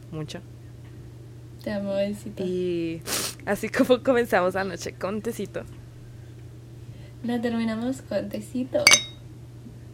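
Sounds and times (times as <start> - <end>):
low hum: 0.0 - 9.9
speech: 0.1 - 0.6, 1.6 - 5.8, 7.2 - 9.1
ceramic tea cups clinking in a toast: 8.9 - 9.2.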